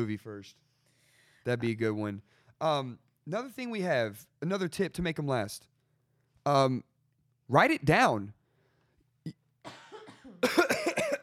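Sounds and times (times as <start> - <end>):
speech: 0.0 - 0.7, 1.4 - 5.7, 6.4 - 6.9, 7.5 - 8.4, 10.4 - 10.7
harsh coughs: 9.3 - 11.2.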